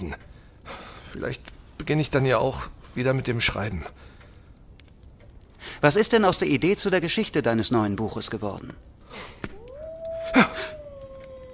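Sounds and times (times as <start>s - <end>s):
breathy noise: 0.0s - 5.9s, 8.8s - 11.5s
speech: 1.2s - 4.1s, 5.8s - 9.5s
single long wolf howl: 9.5s - 11.5s.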